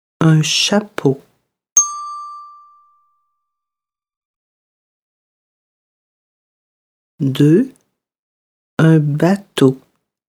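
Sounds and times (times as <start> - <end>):
speech: 0.2 - 1.3, 7.2 - 7.8, 8.8 - 9.8
bright bell chime as signal in a French word-reading exercise: 1.8 - 3.2.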